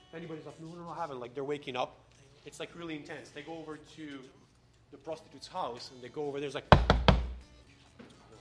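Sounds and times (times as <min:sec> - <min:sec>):
speech: 0:00.1 - 0:07.0
guards knocking on a door: 0:06.7 - 0:07.4.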